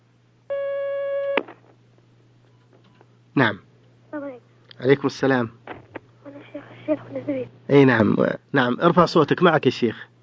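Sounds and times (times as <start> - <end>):
telephone line tone as a phone call comes through: 0.5 - 1.4
speech: 3.4 - 3.7, 4.8 - 5.6, 6.9 - 10.1.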